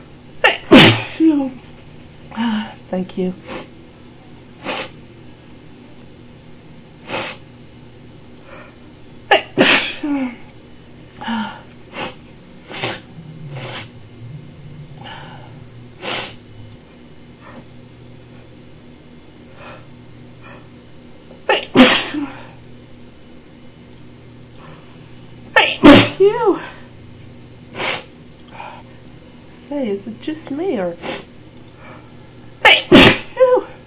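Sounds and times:
low steady hum: 0.0 - 33.8
person with allergies sneezing: 0.4 - 1.3, 4.6 - 5.0, 9.3 - 10.4, 21.5 - 22.6, 25.6 - 26.2, 32.6 - 33.8
speech: 1.2 - 1.7, 2.3 - 3.7
person sniffing and snorting: 4.6 - 5.0, 7.0 - 7.5, 11.9 - 14.0, 14.9 - 16.4, 27.7 - 28.8, 31.0 - 32.0.

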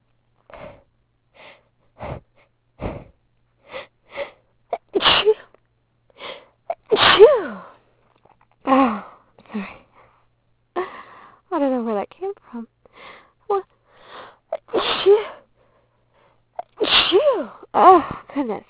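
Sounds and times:
quiet breaths: 0.4 - 4.6, 5.4 - 6.6, 7.6 - 11.5, 12.4 - 14.5, 15.2 - 16.6
person sneezing repeatedly: 4.8 - 5.5, 6.7 - 7.7, 14.5 - 15.4, 16.6 - 18.3.

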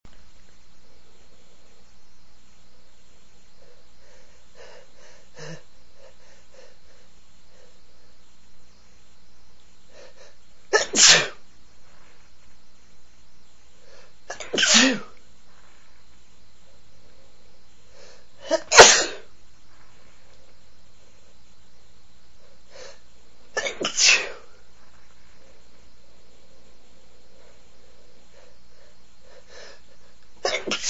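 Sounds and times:
breathy male sneezing: 14.4 - 15.1, 18.4 - 19.3, 23.6 - 24.5, 30.4 - 30.8.

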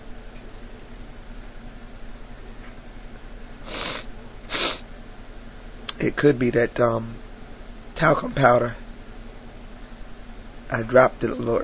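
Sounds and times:
steady hum: 0.0 - 11.6
person sneezing: 3.6 - 4.9
speech: 6.0 - 7.2, 8.0 - 8.8, 10.7 - 11.6.

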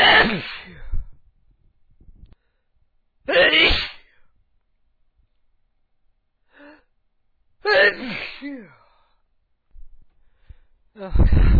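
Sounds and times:
speech: 0.0 - 0.6, 11.0 - 11.5
loud sneeze: 0.0 - 0.9, 3.3 - 4.1, 7.7 - 8.7.

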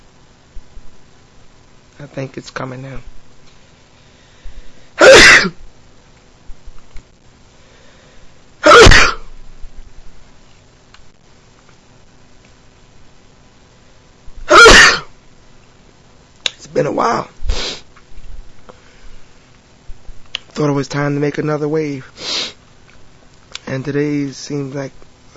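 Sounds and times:
speech: 2.0 - 3.2, 16.8 - 17.4, 20.6 - 22.2, 23.7 - 25.0
person sneezing: 5.0 - 5.6, 8.6 - 9.3, 14.5 - 15.1, 17.5 - 17.8.

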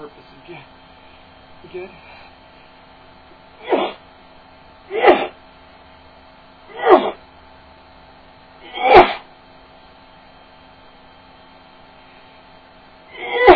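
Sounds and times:
speech: 1.6 - 2.3
person sneezing loudly: 3.6 - 4.0, 4.9 - 5.4, 6.7 - 7.2, 8.6 - 9.2, 13.1 - 13.5.

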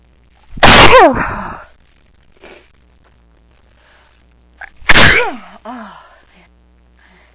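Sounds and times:
person sneezing: 0.6 - 1.6, 4.6 - 5.7
speech: 0.9 - 1.4.

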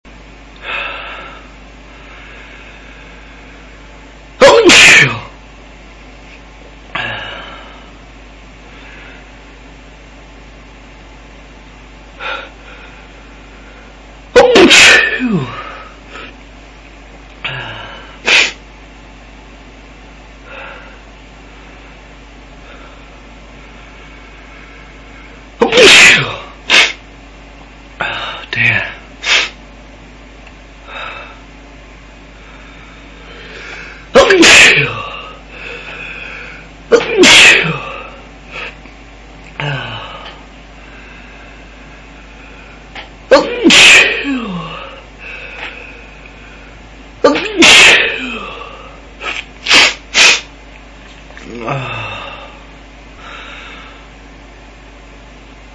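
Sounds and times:
man sneezing: 4.4 - 5.4, 14.3 - 16.3, 17.4 - 18.6, 25.6 - 27.0, 28.0 - 29.6, 33.9 - 35.9, 36.9 - 38.8, 43.3 - 45.8, 47.2 - 50.5.

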